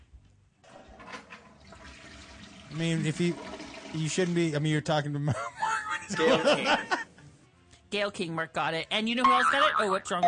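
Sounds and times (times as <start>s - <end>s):
toilet flushing with swirling gurgling water: 0.6s - 4.6s
speech: 2.7s - 7.0s, 7.9s - 10.2s
laughter: 5.2s - 7.2s.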